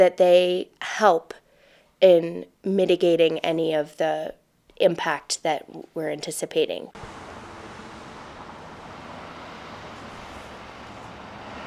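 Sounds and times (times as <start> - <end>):
speech: 0.0 - 1.4, 2.0 - 7.2
dense summer road traffic in a busy town: 7.0 - 11.6.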